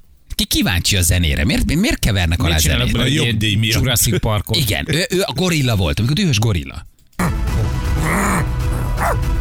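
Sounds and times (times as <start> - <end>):
speech: 0.5 - 6.9
dog barking: 8.0 - 9.2.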